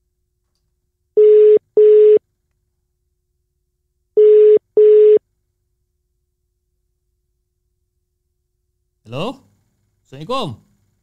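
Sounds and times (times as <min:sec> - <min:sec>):
internet phone call connecting tone beeps: 0:01.2 - 0:02.2, 0:04.2 - 0:05.2
speech: 0:09.1 - 0:09.4, 0:10.1 - 0:10.7.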